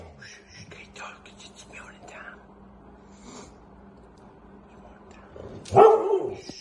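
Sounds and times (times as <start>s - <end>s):
small dog barking and yipping: 5.7s - 6.4s.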